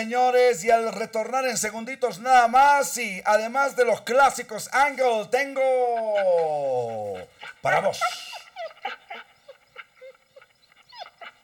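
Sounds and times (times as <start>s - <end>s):
speech: 0.0s - 9.0s
laughter: 5.4s - 11.4s
small dog or puppy whining yelps: 6.8s - 11.4s.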